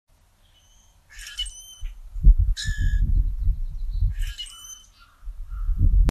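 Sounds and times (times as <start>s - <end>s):
common grackle calling: 0.4s - 2.0s, 2.6s - 3.1s, 4.1s - 5.8s.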